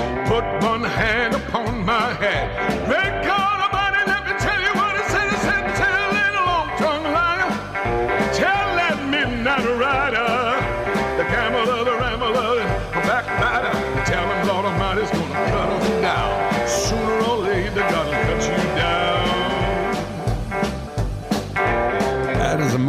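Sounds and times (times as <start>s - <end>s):
fire-and-brimstone gospel song with powerful male vocal: 0.0s - 20.5s
full rhythmic band backing: 0.0s - 22.8s
speech: 0.3s - 3.1s.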